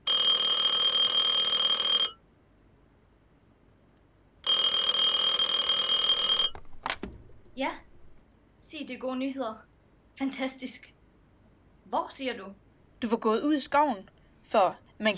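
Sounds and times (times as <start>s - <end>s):
telephone ringing with electronic trill: 0.0s - 2.4s, 4.4s - 8.2s
speech: 8.8s - 10.9s, 11.9s - 15.1s.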